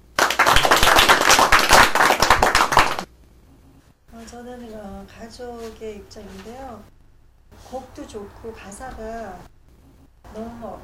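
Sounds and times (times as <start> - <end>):
audience clapping: 0.0 - 3.1
speech: 4.3 - 7.0, 7.7 - 9.6, 10.3 - 10.8.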